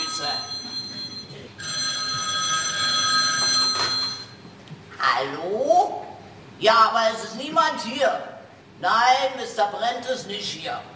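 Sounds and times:
telephone bell ringing: 0.0s - 4.5s
speech: 6.6s - 10.9s.

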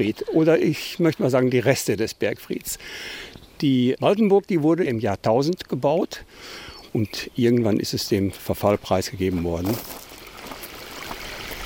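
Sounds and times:
speech: 0.0s - 10.0s
babbling forest brook: 9.2s - 11.6s.

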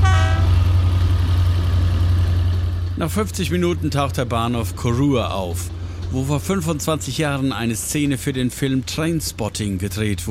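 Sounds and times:
night sleeper train horn toot: 0.0s - 0.7s
night sleeper train travelling from Fort William toward London: 0.0s - 10.2s
speech: 3.0s - 10.2s.

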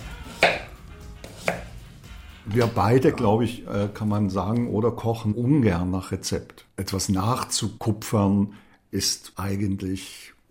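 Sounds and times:
knife cutting food into slices on a board: 0.3s - 1.8s
speech: 2.5s - 10.5s.

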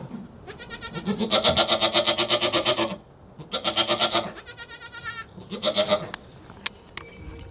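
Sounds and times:
several goats bleating: 0.4s - 6.2s.

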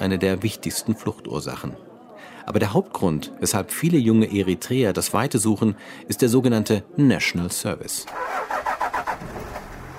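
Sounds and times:
speech: 0.0s - 8.6s
car engine cranking and running on the drive from Asmara to Keren: 8.1s - 9.9s.

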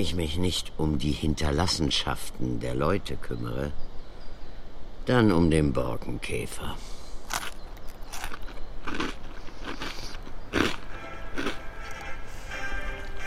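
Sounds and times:
speech: 0.0s - 3.9s, 5.0s - 7.5s
steady hiss: 0.0s - 13.2s
person biting and chewing a dry rusk: 7.2s - 12.2s.

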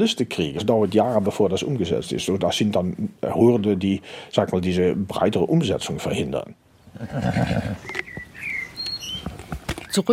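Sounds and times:
speech: 0.0s - 8.0s, 9.9s - 10.1s
high chirping birdsong: 6.7s - 10.1s
horse whinnying: 6.8s - 9.2s
horse snorting: 6.9s - 8.0s.

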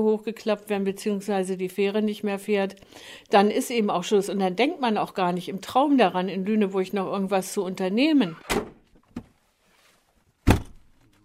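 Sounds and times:
speech: 0.0s - 8.8s
Land Rover door slamming shut with a heavy thud: 10.4s - 10.8s.

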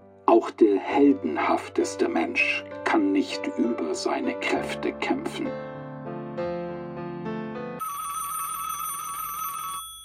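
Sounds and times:
speech: 0.3s - 5.7s
electronic telephone ringtone for an incoming call to a radio show: 7.8s - 10.0s.

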